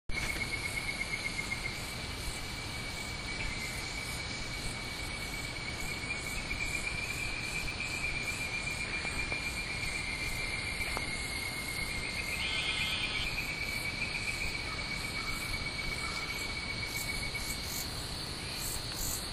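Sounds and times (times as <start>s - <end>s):
Hyla avivoca tree frog calling: 0.2s - 19.2s.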